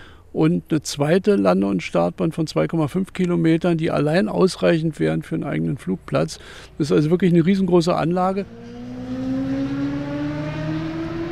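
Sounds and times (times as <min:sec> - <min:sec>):
speech: 0:00.4 - 0:08.8
motorcycles racing on a test track at a former airfield: 0:05.7 - 0:11.3.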